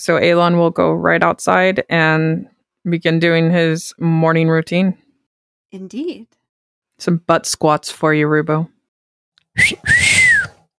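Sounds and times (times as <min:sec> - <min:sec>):
speech: 0:00.0 - 0:05.0, 0:05.7 - 0:06.4, 0:07.0 - 0:08.8, 0:09.6 - 0:10.2
wolf whistle: 0:09.6 - 0:10.6.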